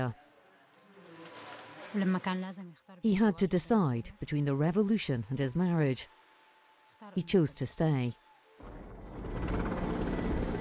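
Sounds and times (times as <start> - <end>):
speech: 0.0 - 0.2, 1.9 - 6.2, 7.0 - 8.7
helicopter rotor drone above a Syrian city: 8.6 - 10.6.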